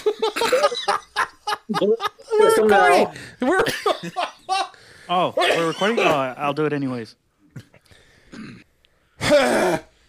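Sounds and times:
laughter: 0.0s - 4.8s
speech: 1.8s - 7.7s, 9.3s - 9.9s
person clearing throat: 8.3s - 9.9s.

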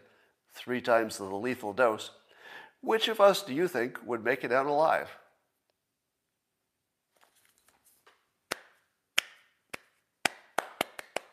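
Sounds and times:
speech: 0.6s - 5.2s
slow hand clapping: 8.5s - 11.3s.

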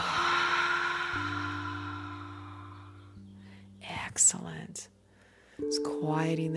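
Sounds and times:
inhale and long audible exhale before a breathing practice: 0.0s - 3.8s
low sustained hum: 0.0s - 3.8s
speech: 4.2s - 5.0s, 5.6s - 6.5s.

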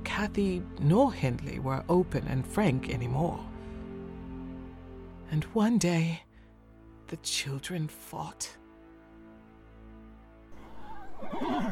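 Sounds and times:
speech: 0.2s - 3.5s, 5.3s - 6.2s, 7.1s - 8.6s, 11.2s - 11.6s
pony whinnying: 10.6s - 11.6s.

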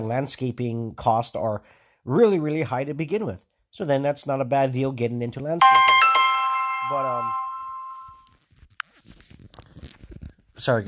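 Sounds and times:
speech: 0.0s - 6.0s, 6.9s - 7.4s, 10.6s - 10.8s
phone message notification chime: 5.6s - 8.2s.

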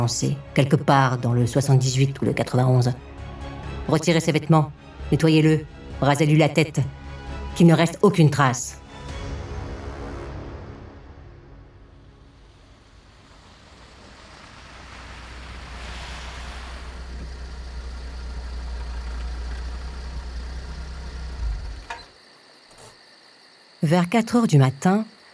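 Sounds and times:
speech: 0.0s - 3.1s, 3.9s - 7.0s, 7.6s - 8.8s, 23.9s - 25.2s
stolen Volkswagen Golf car engine idling while parking outside a building: 11.7s - 22.1s.

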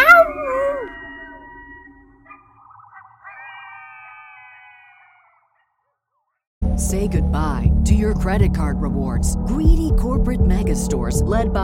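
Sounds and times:
coyotes howling: 0.0s - 6.0s
speech: 6.8s - 11.6s.

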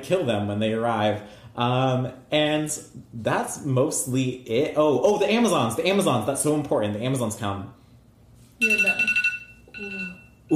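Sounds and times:
speech: 0.0s - 7.8s, 8.6s - 9.2s, 9.8s - 10.5s
phone alarm with rapid warbling electronic beeps: 8.6s - 10.5s.

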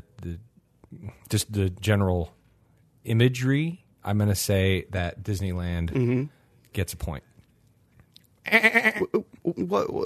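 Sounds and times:
speech: 0.2s - 2.4s, 3.0s - 7.3s, 8.5s - 10.0s
goat bleating: 8.5s - 9.2s.

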